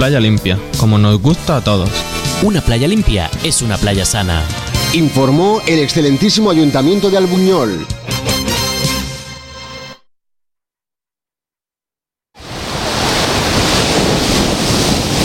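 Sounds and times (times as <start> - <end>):
speech: 0.0 - 8.0
music: 0.0 - 10.0
ocean waves breaking on a beach in Granada Spain: 12.4 - 15.2.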